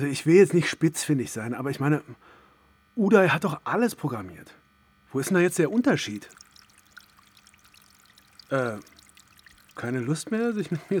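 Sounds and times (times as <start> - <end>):
speech: 0.0 - 2.4, 3.0 - 6.4, 8.5 - 8.9, 9.8 - 10.9
water pouring in a continuous hissing stream: 5.7 - 10.9.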